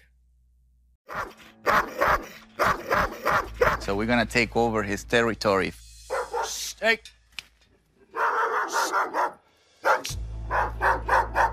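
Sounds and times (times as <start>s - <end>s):
dog barking frantically in sharp yaps: 1.1s - 3.8s, 6.1s - 6.6s, 8.1s - 11.5s
speech: 3.9s - 5.8s, 6.8s - 7.2s.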